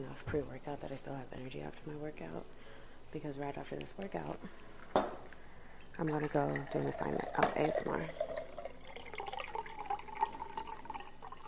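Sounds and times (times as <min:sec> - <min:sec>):
speech: 0:00.0 - 0:05.1, 0:06.0 - 0:08.3
water pouring from a Brita filter pitcher into a cup: 0:05.8 - 0:11.4.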